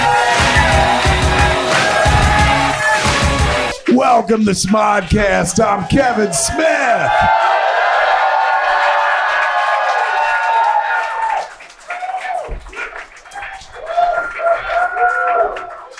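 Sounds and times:
live audience applauding: 0.0 - 3.8, 7.3 - 15.9
speech: 4.1 - 7.5.

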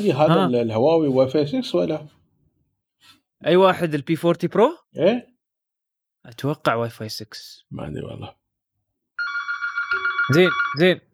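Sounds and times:
speech: 0.0 - 2.2, 3.0 - 5.3, 6.2 - 8.4, 10.3 - 11.1
old-style telephone bell ringing: 9.2 - 10.9.

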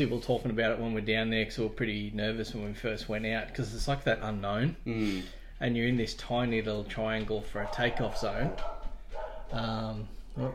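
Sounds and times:
speech: 0.0 - 8.8, 9.5 - 10.5
dogs barking: 7.5 - 9.7
long drawn-out dog yelp: 7.6 - 9.5.

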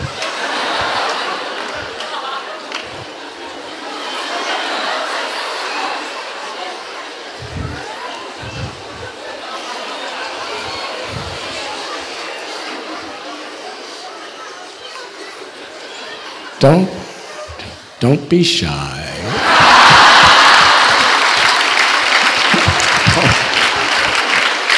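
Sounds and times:
crowd imitating monkey chatter: 0.0 - 14.0, 19.2 - 24.7
people laughing: 0.0 - 14.0, 19.2 - 24.7
speech: 16.6 - 17.0, 18.0 - 19.0.

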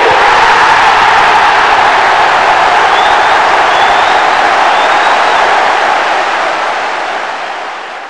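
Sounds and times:
crowd cheering: 0.0 - 8.0
shrill whistles: 2.7 - 5.8.

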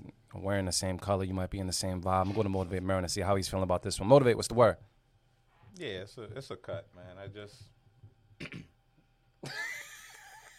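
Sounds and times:
speech: 0.4 - 4.9, 5.8 - 7.8
throat clearing: 8.4 - 8.8.

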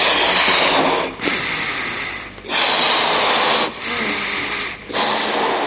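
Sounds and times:
strong breathy blowing puffs: 0.2 - 5.6.

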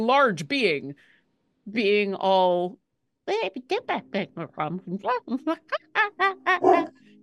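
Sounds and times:
speech: 0.0 - 7.0
human voice imitating a dog barking: 6.3 - 7.0.

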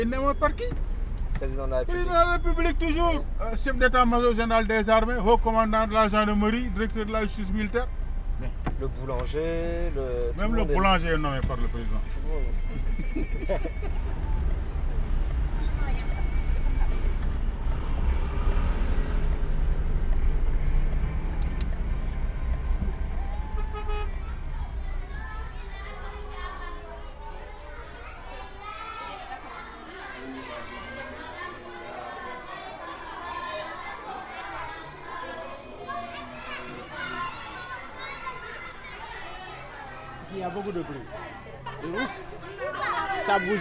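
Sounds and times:
speech: 0.0 - 14.1
children chattering and shouting while playing: 0.0 - 43.6
laughter: 12.6 - 14.5, 41.2 - 43.2
children's high cries: 21.8 - 43.6.

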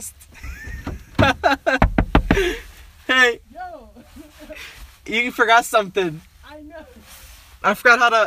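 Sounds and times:
speech: 0.0 - 0.4, 1.3 - 2.6, 5.1 - 6.3, 7.6 - 8.2
car door being unlocked outdoors in cold weather: 0.7 - 2.4.

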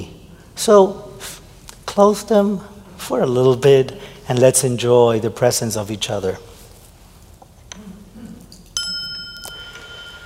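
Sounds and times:
speech: 0.0 - 1.1, 2.0 - 6.5
single bell struck with a bright sustained tone: 8.8 - 10.2.

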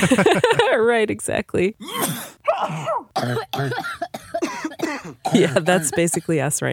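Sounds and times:
laughter: 0.0 - 0.8
speech: 0.0 - 6.7
harsh raspy coughing: 1.8 - 6.4.

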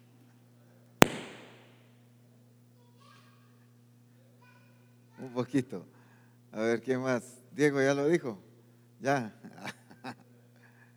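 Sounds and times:
firework rocket bang outside: 1.0 - 1.7
speech: 5.2 - 10.2.

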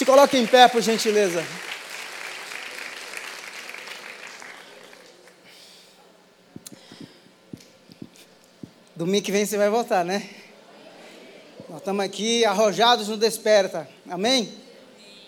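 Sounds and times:
speech: 0.0 - 1.8, 9.0 - 10.4, 11.7 - 14.6
congregation applauding: 0.0 - 5.3.

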